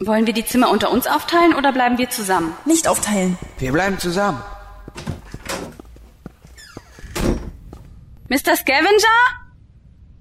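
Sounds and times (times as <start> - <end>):
speech: 0.0 - 5.1, 8.3 - 9.4
soft knocks and thuds: 4.9 - 7.9
door pushed open with a scraping rush: 5.0 - 5.9, 6.5 - 7.7
door creaking squeal: 6.5 - 7.6.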